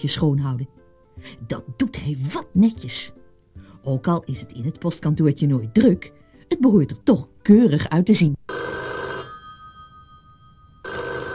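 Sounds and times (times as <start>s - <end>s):
speech: 0.0s - 3.2s, 3.8s - 8.4s
telephone ringing: 8.5s - 11.3s.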